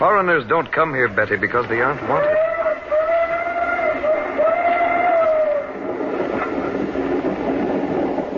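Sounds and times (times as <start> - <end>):
speech: 0.0 - 2.5
passenger train running on rails: 0.0 - 8.3
train whistle: 2.1 - 5.8.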